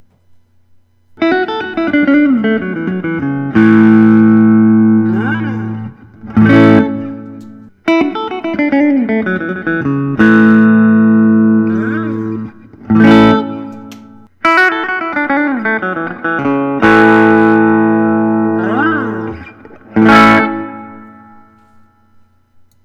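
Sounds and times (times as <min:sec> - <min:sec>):
Collings I-35 LC electric guitar with Lollar pickups: 0:01.2 - 0:22.0.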